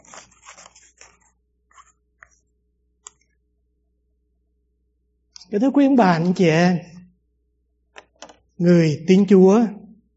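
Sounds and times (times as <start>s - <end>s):
scissors cutting paper: 0.0s - 2.0s
speech: 5.5s - 7.0s, 8.6s - 9.8s.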